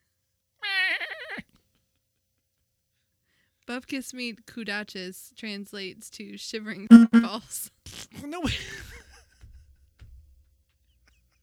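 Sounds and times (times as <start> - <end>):
goat screaming: 0.6 - 1.4
speech: 3.7 - 8.9.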